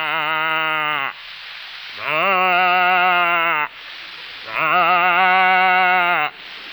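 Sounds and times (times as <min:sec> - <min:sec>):
human voice imitating a calf calling for its mother: 0:00.0 - 0:01.2, 0:02.0 - 0:03.7, 0:04.5 - 0:06.4.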